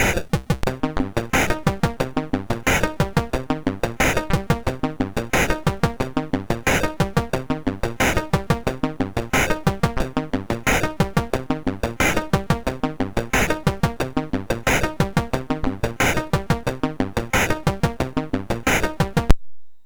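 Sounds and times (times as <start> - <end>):
reggae music on a MOS6581R2 sound chip: 0.0 - 19.3.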